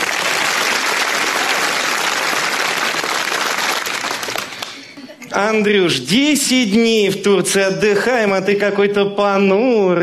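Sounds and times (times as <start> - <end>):
large crowd applauding at a comedy show: 0.0 - 5.0
speech: 5.4 - 10.0.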